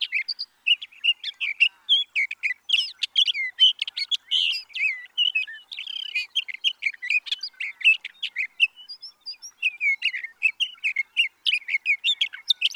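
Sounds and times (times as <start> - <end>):
sage thrasher singing a stream of warbles and whistles: 0.0 - 12.7.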